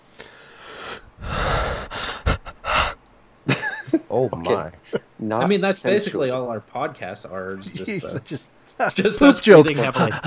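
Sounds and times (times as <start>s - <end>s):
man breathing heavily: 0.0s - 3.0s, 9.8s - 10.2s
speech: 4.1s - 10.2s
laughter: 7.6s - 10.2s.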